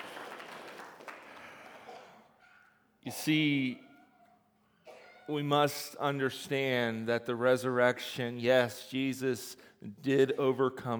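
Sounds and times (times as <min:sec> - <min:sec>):
church congregation applauding: 0:00.0 - 0:01.9
speech: 0:03.0 - 0:03.8, 0:05.3 - 0:10.9.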